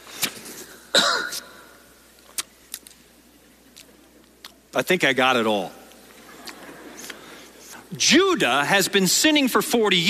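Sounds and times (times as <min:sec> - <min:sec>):
person coughing with raspy coughs: 0:00.9 - 0:01.7
speech: 0:04.7 - 0:05.8, 0:08.0 - 0:10.0.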